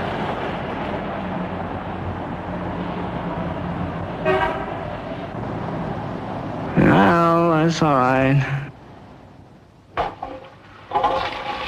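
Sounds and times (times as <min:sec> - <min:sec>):
dense road traffic rumble: 0:00.0 - 0:11.5
car horn toot: 0:04.2 - 0:04.8
speech: 0:07.7 - 0:08.6.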